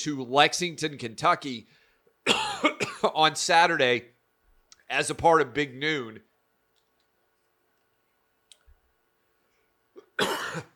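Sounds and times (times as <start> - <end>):
speech: 0.0 - 4.2, 4.9 - 6.3, 10.2 - 10.7
quiet hum: 0.0 - 10.7
loud cough: 2.2 - 3.2, 10.0 - 10.7.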